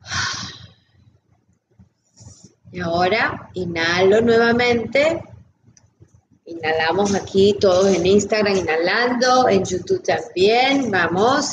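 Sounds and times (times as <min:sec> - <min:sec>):
deep exhale during a guided breathing exercise: 0:00.0 - 0:00.8
speech: 0:02.7 - 0:05.3, 0:06.6 - 0:11.5.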